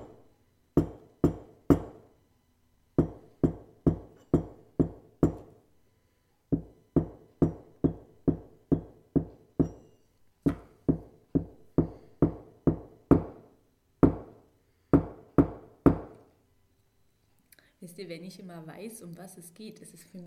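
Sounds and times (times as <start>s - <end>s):
knocks on a hard surface tapping out a song's rhythm: 0.8s - 2.1s, 3.0s - 5.5s, 6.5s - 9.9s, 10.5s - 13.4s
speech: 18.0s - 20.2s.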